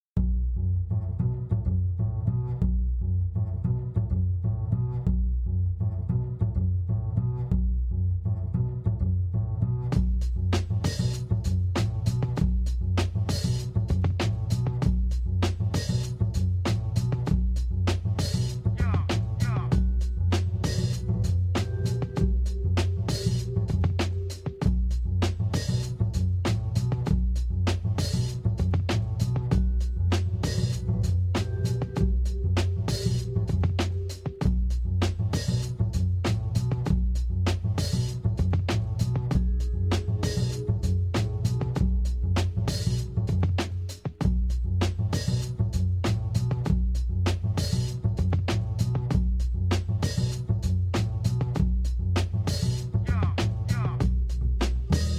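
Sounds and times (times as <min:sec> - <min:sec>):
bass groove: 0:00.0 - 0:55.1.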